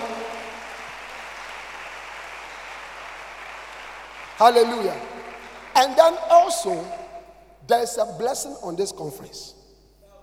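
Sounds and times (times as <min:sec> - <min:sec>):
audience clapping hands: 0:00.0 - 0:07.1
speech: 0:04.4 - 0:05.1, 0:05.8 - 0:07.0, 0:07.7 - 0:09.6.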